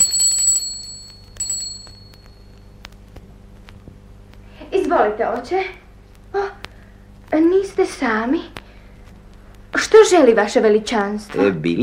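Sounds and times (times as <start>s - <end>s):
small hand bell ringing: 0.0s - 2.6s
speech: 4.9s - 6.5s, 7.4s - 8.6s, 9.9s - 11.8s.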